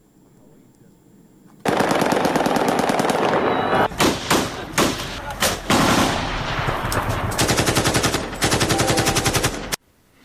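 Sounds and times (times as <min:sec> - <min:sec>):
celebratory automatic gunfire into the air in Afghanistan after a cricket victory: 0:01.6 - 0:09.8.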